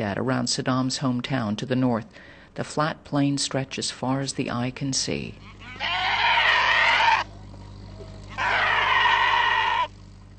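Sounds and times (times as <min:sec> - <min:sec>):
speech: 0:00.0 - 0:06.0
low steady hum: 0:00.0 - 0:10.3
goats and sheep bleating in rural Iraq: 0:05.4 - 0:07.3, 0:08.2 - 0:09.9.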